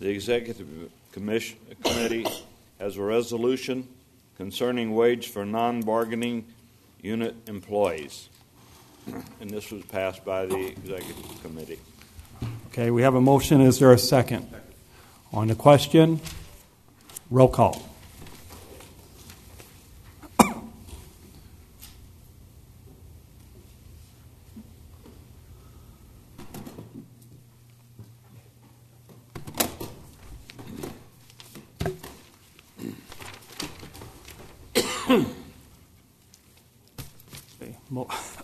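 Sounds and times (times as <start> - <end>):
speech: 0.0 - 8.3, 9.0 - 14.7, 15.3 - 16.4, 17.3 - 17.9
throat clearing: 1.8 - 2.5, 20.2 - 20.8, 32.8 - 33.1, 34.8 - 35.5
dry coughing: 1.8 - 2.6, 20.2 - 20.8, 34.7 - 35.6.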